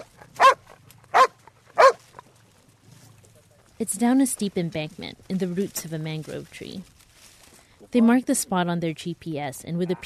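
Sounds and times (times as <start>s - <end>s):
cadaver dog barking an alert: 0.0s - 2.0s
speech: 3.8s - 7.0s, 7.9s - 10.0s.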